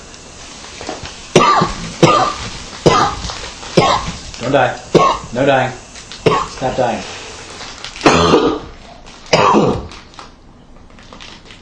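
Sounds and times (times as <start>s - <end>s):
person coughing hard in rough heavy bursts: 1.4s - 3.2s, 3.8s - 4.2s, 4.9s - 5.3s, 6.2s - 6.7s, 8.0s - 8.7s, 9.3s - 9.9s
speech: 4.4s - 7.2s.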